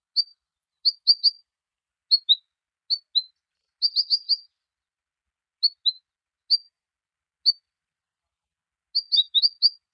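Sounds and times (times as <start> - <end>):
benimashiko bird: 0.0 - 1.5, 2.1 - 4.7, 5.6 - 6.8, 7.4 - 7.7, 8.9 - 9.9.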